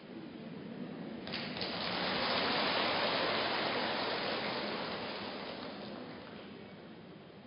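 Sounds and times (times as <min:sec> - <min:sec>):
steady rain at a temple: 0:01.3 - 0:06.8.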